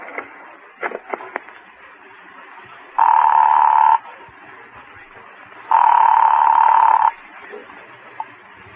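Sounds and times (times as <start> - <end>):
telephone ringing in a phone booth: 3.0 - 4.1, 5.7 - 7.2.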